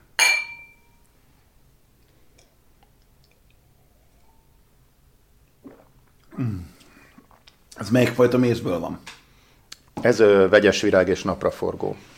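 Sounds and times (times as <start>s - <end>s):
glasses clinking in a toast: 0.2s - 1.0s
speech: 6.4s - 6.7s, 7.8s - 9.1s, 10.0s - 12.1s.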